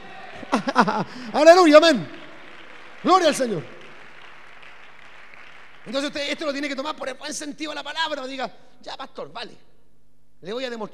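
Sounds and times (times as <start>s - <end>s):
church audience applauding during a service: 0.0s - 6.9s
laughter: 0.3s - 1.8s
speech: 0.6s - 2.2s, 3.0s - 3.8s, 5.8s - 9.7s, 10.4s - 10.9s.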